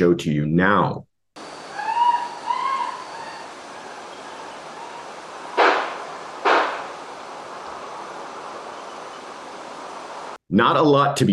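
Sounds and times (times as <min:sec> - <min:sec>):
speech: 0:00.0 - 0:01.1, 0:10.5 - 0:11.3
faint high-pitched screaming: 0:01.4 - 0:10.2
quiet hiss: 0:01.4 - 0:10.4
sharp loud gunshots: 0:05.6 - 0:06.9.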